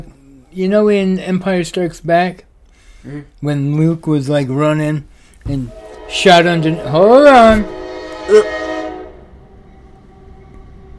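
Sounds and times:
speech: 0.0 - 8.6
train horn blast: 5.5 - 10.4.

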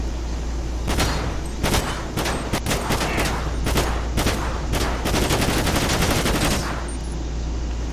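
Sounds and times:
low engine-like rumble: 0.0 - 7.9
video game gunfire at a car's tires in a police video game: 0.9 - 7.0.

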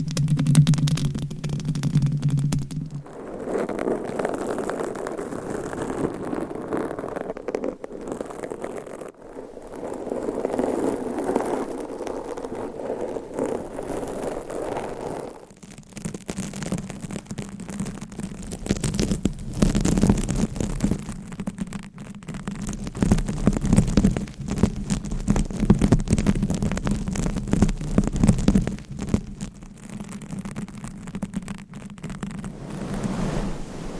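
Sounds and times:
dense scratching rubbing across binaural microphones: 0.0 - 33.8.

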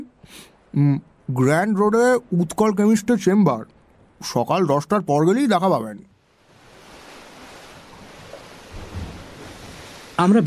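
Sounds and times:
speech: 0.0 - 6.1, 10.2 - 10.4
ocean waves at the seashore in early morning: 6.2 - 10.4.

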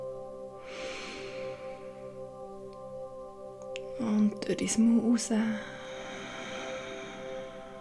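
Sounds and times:
steady quiet low musical drone: 0.0 - 7.7
deep inhale through the nose during a guided meditation: 0.6 - 2.2, 5.6 - 7.7
speech: 4.0 - 5.8.

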